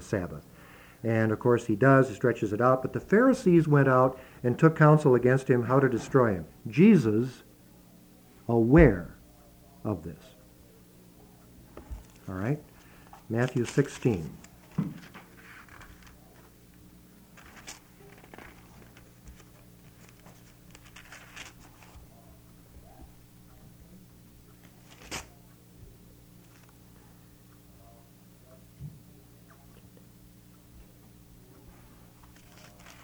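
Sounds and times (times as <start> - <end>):
quiet steady hum: 0.0 - 33.0
speech: 0.1 - 7.4, 8.5 - 9.2, 9.8 - 10.3, 12.3 - 12.7, 13.3 - 15.1
thin India paper Bible pages being turned: 13.4 - 16.2, 17.4 - 22.0, 24.8 - 25.3, 32.3 - 33.0.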